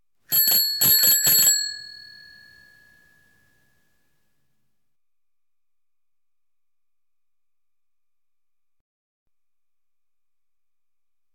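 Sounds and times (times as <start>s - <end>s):
bicycle bell: 0.3s - 3.5s.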